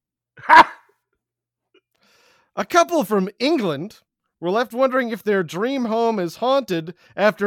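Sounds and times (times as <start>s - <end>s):
dog barking: 0.4s - 0.8s
speech: 2.6s - 7.4s.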